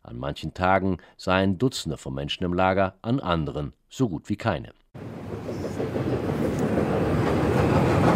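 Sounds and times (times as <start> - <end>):
speech: 0.1 - 5.3
train rumbling on the Greece–Serbia railway line through Veles North Macedonia: 5.0 - 8.1.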